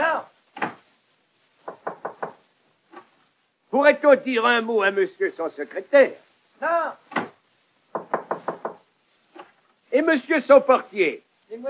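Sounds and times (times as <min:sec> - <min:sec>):
knocking on a door: 0:01.6 - 0:02.4, 0:07.2 - 0:08.9
speech: 0:03.8 - 0:07.0, 0:09.9 - 0:11.6.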